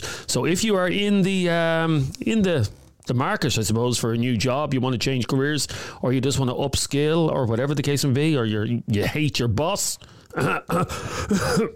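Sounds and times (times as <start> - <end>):
speech: 0.3 - 11.7
rough throaty coughs: 10.3 - 11.7.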